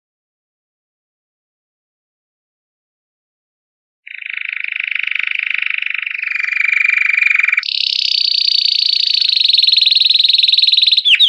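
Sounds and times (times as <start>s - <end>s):
canary singing buzzy pulsed trills: 4.1s - 11.2s.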